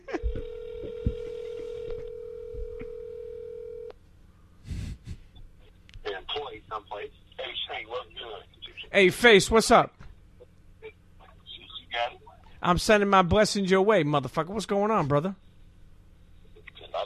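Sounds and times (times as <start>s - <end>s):
phone tone: 0.1s - 3.9s
speech: 8.9s - 10.0s, 12.6s - 15.4s.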